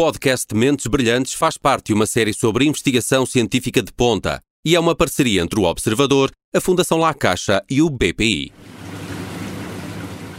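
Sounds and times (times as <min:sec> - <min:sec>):
speech: 0:00.0 - 0:08.7
low mechanical hum: 0:08.6 - 0:10.3
water circulating in zebrafish aquarium tanks: 0:08.6 - 0:10.3.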